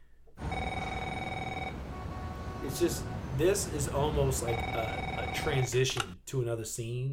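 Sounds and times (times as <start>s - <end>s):
cell phone ringing with an electronic trill in a movie scene: 0.4s - 3.3s, 4.2s - 5.8s
speech: 2.6s - 7.1s.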